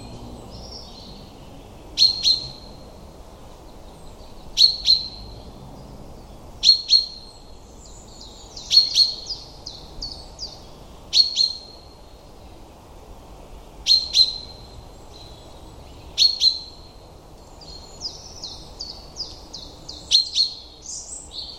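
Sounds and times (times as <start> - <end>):
common chaffinch calls: 0.0 - 2.8, 3.9 - 5.3, 6.6 - 12.0, 13.8 - 16.9, 17.5 - 21.5.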